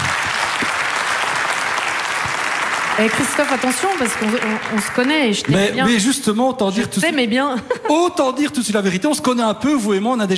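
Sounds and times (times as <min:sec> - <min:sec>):
audience applause for a guest at a televised tribute segment: 0:00.0 - 0:05.9
speech: 0:03.0 - 0:10.3.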